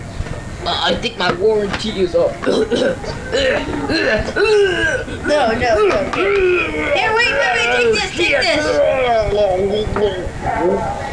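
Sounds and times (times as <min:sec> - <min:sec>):
speech: 0:00.8 - 0:11.1
laughter: 0:02.4 - 0:09.3
person with a slight cough coughing: 0:02.5 - 0:05.2.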